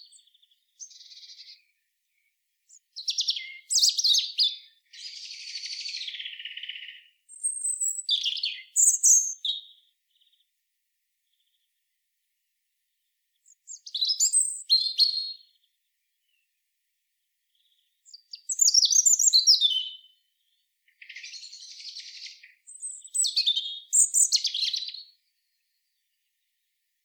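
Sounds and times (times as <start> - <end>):
European robin Erithacus rubecula singing high sweet whistles and jumbled trills: 0.0 - 10.4, 13.4 - 15.5, 17.6 - 20.2, 21.0 - 26.0.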